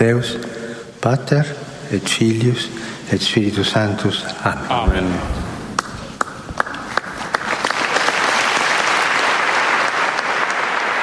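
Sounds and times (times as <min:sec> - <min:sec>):
speech: 0:00.0 - 0:05.4
large crowd of pilgrims applauding after a papal blessing: 0:06.2 - 0:11.0.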